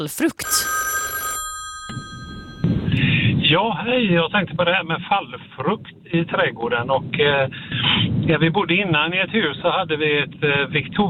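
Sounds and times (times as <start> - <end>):
speech: 0.0 - 0.8, 3.5 - 11.0
telephone ringing on a call-in line: 0.4 - 3.4.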